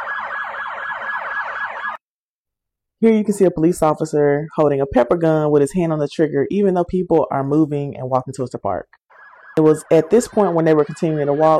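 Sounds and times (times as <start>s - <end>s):
police siren yelping during a street protest: 0.0s - 2.0s, 9.1s - 11.5s
speech: 3.0s - 9.0s, 9.6s - 11.5s.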